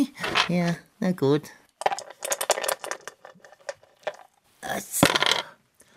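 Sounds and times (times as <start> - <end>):
speech: 0.0 - 1.6, 4.7 - 5.3
dice clattering across a hard tabletop: 0.2 - 0.7, 1.8 - 5.6.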